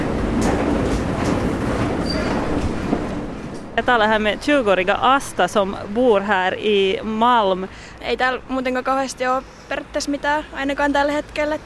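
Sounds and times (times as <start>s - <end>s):
faint rhythmic train wheel clatter: 0.0s - 5.0s
train rumbling at an underground train platform in Malmö, Sweden: 0.0s - 11.6s
speech: 3.8s - 11.6s.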